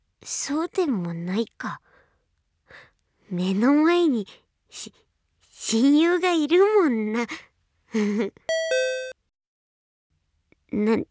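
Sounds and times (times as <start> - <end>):
speech: 0.2 - 1.8, 2.7 - 5.0, 5.6 - 8.8, 10.7 - 11.0
two-note ding-dong chime: 8.5 - 9.1.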